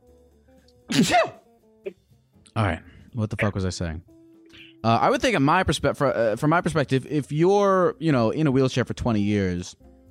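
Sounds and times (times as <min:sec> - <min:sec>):
person sneezing: 0:00.9 - 0:01.4
speech: 0:00.9 - 0:02.0, 0:02.6 - 0:04.2, 0:04.8 - 0:09.9.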